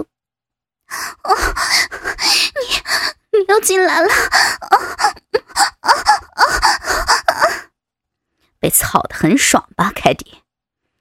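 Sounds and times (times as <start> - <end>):
woman panting and gasping for breath during sex: 0.9 - 3.3, 3.9 - 7.8
speech: 3.5 - 6.1, 8.6 - 10.4.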